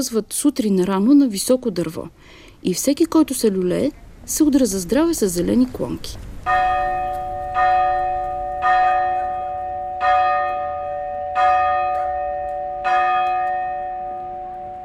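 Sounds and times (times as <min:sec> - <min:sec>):
speech: 0:00.0 - 0:07.0
festive church bells ringing for a village feast: 0:06.4 - 0:14.8.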